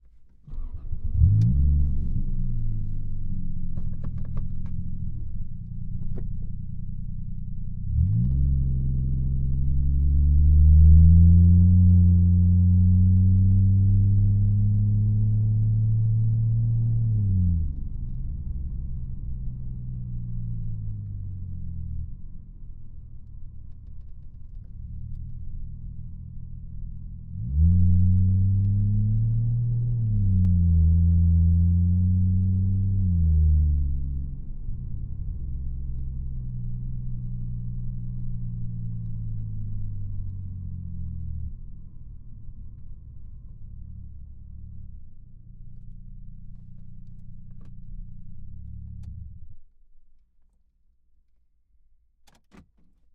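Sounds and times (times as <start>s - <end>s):
Toyota Chaser Mark 2 engine starting, idling and driving away, heard from interior: 0.0s - 49.6s, 52.2s - 53.0s.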